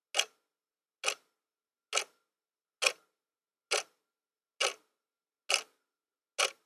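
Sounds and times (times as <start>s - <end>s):
wall clock ticking: 0.1s - 0.4s, 1.0s - 1.3s, 1.9s - 2.2s, 2.8s - 3.1s, 3.7s - 4.0s, 4.6s - 5.8s, 6.4s - 6.6s.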